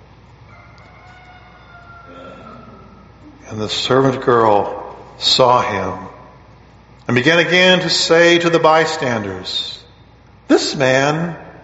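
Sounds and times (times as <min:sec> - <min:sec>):
rooster crowing: 0:00.5 - 0:03.2
speech: 0:03.4 - 0:06.1, 0:07.1 - 0:09.8, 0:10.5 - 0:11.4.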